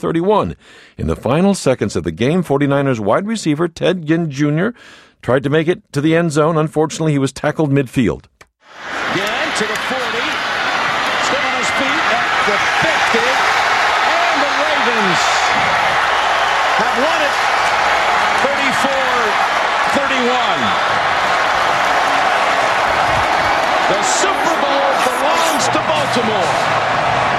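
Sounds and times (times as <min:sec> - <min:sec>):
speech: 0:00.0 - 0:09.0, 0:17.0 - 0:17.4, 0:26.1 - 0:26.9
stadium crowd cheering at football game: 0:08.7 - 0:27.3.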